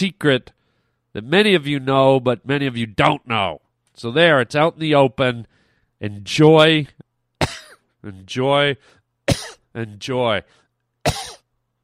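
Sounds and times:
speech: 0.0s - 0.6s, 1.2s - 7.0s, 8.0s - 11.3s
single short throaty cough: 7.4s - 8.0s, 9.3s - 9.7s, 11.0s - 11.5s.

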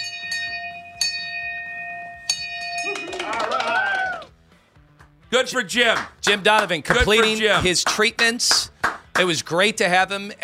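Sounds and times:
handheld bell struck to mark a patient's last radiation treatment: 0.0s - 3.4s
speech: 5.3s - 10.4s.

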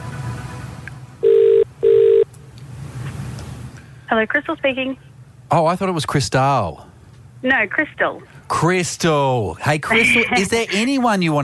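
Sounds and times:
low hum: 0.0s - 11.4s
telephone ringback tone: 1.2s - 2.2s
speech: 4.1s - 11.4s.

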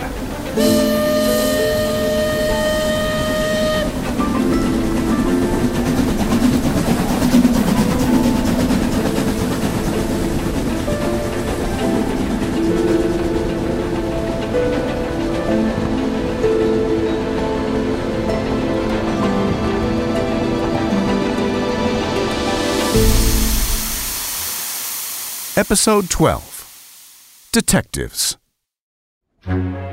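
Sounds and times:
moving train rumbling on rails at night: 0.0s - 25.6s
train horn: 0.4s - 5.7s
speech: 25.6s - 26.5s, 27.6s - 28.4s, 29.4s - 29.7s.

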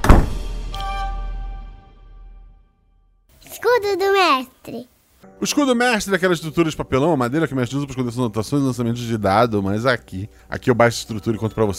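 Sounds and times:
heavy door slamming shut: 0.0s - 0.6s
speech: 3.8s - 11.7s.

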